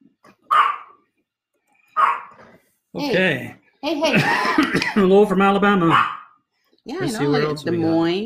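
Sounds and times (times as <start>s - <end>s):
female dog barking: 0.5s - 1.0s, 2.0s - 2.5s, 5.9s - 6.4s
speech: 3.0s - 6.2s, 6.9s - 8.2s
laughter: 4.1s - 5.2s.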